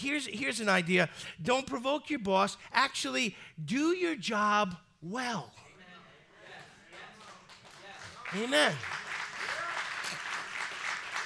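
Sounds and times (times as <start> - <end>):
speech: 0.0 - 5.6, 8.3 - 9.0
audience applause: 6.9 - 11.2.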